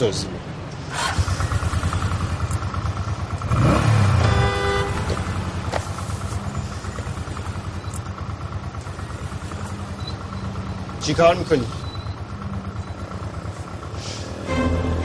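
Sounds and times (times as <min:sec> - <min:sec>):
speech: 0:00.0 - 0:01.0, 0:11.1 - 0:11.8
motorbike engine running: 0:00.0 - 0:15.0
traffic noise: 0:00.0 - 0:15.0
brief horn-like tone: 0:04.1 - 0:05.2, 0:14.4 - 0:15.0.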